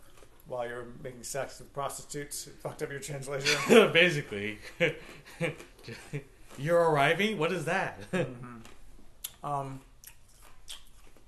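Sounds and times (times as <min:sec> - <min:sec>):
ice chewed against the microphone: 0:00.0 - 0:00.5, 0:08.6 - 0:11.2
speech: 0:00.5 - 0:08.8, 0:09.4 - 0:09.9.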